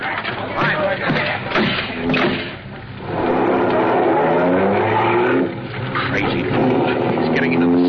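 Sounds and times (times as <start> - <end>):
clattering noises: 0.0 - 4.0, 5.5 - 7.3
voices: 0.0 - 7.8
car engine revving as the car pulls away fast: 1.8 - 7.8.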